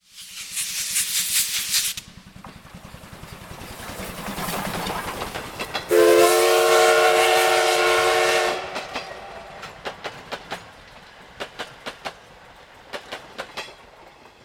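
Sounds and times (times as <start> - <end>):
locomotive passing: 0.1 - 14.4.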